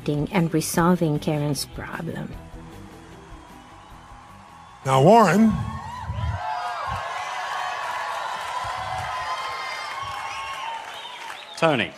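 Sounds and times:
speech: 0:00.0 - 0:02.5, 0:04.8 - 0:05.7, 0:11.6 - 0:11.9
crowd applauding and cheering: 0:02.4 - 0:11.9
scattered whoops and shouts from a crowd: 0:03.2 - 0:11.9.

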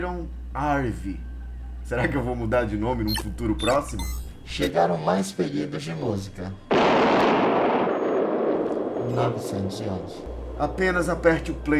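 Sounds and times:
speech: 0:00.0 - 0:07.4, 0:09.1 - 0:11.7
loud heavy explosion with roaring rumble: 0:06.7 - 0:10.2.

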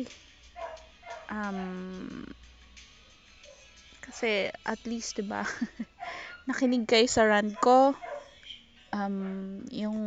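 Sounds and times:
speech: 0:00.0 - 0:00.3, 0:01.3 - 0:02.5, 0:04.0 - 0:08.1, 0:08.9 - 0:10.0
dogs fighting and barking outside: 0:00.5 - 0:01.8, 0:05.8 - 0:06.4, 0:07.4 - 0:08.4
dog yelping with a drawn-out strained cry: 0:00.6 - 0:01.8, 0:07.5 - 0:08.4.

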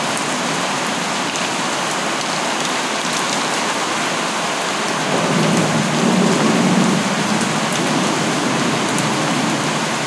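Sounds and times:
natural rain falling: 0:00.0 - 0:10.0.

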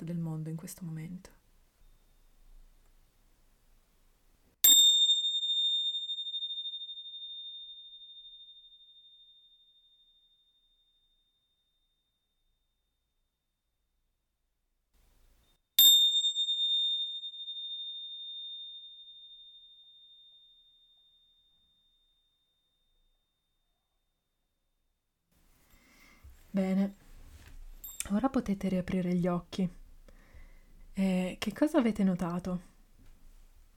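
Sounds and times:
speech: 0:00.1 - 0:01.4, 0:26.6 - 0:27.0, 0:28.1 - 0:29.8, 0:31.0 - 0:32.7
meditation bell ringing: 0:04.6 - 0:12.0, 0:15.8 - 0:22.9, 0:27.8 - 0:28.1.

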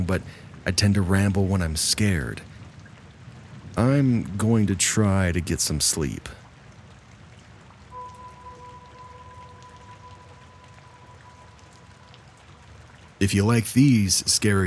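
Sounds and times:
speech: 0:00.0 - 0:02.5, 0:03.8 - 0:06.4, 0:13.2 - 0:14.6
steady rain falling in a soft dense patter: 0:00.0 - 0:14.6
faint sustained humming tone: 0:07.9 - 0:13.2.

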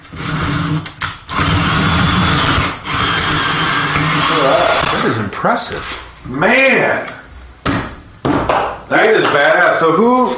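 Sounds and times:
power drill driving a screw into a 2x4 wood board: 0:00.1 - 0:05.0
speech: 0:04.4 - 0:07.2, 0:08.9 - 0:10.3.

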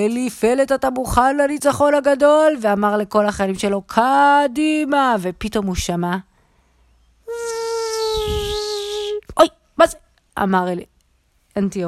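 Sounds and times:
speech: 0:00.0 - 0:06.3, 0:09.4 - 0:10.9, 0:11.6 - 0:11.8
mosquito buzzing: 0:07.3 - 0:09.2.

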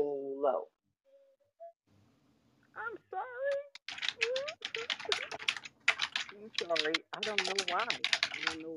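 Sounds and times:
speech: 0:00.4 - 0:00.8, 0:06.4 - 0:08.7
fingers typing on a computer keyboard: 0:03.8 - 0:08.7.

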